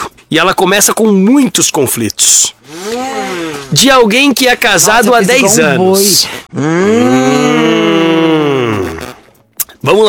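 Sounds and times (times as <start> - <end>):
speech: 0.3 - 2.6, 3.7 - 8.2, 9.8 - 10.0
cow mooing: 6.6 - 9.2.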